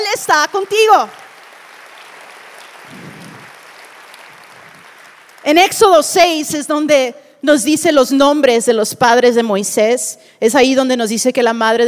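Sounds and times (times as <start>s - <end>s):
speech: 0.2s - 1.2s, 5.4s - 11.8s
congregation applauding: 0.5s - 5.8s.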